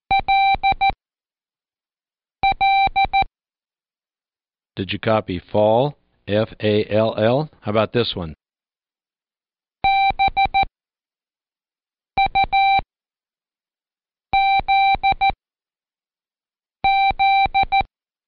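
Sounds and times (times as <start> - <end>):
Morse code electronic tone pulses: 0.1 - 1.0, 2.4 - 3.3, 9.8 - 10.7, 12.2 - 12.8, 14.4 - 15.4, 16.8 - 17.9
speech: 4.8 - 8.4.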